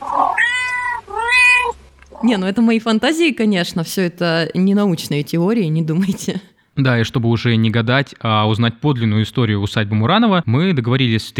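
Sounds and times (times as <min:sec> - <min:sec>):
cat meowing: 0:00.0 - 0:02.3
speech: 0:02.2 - 0:11.3.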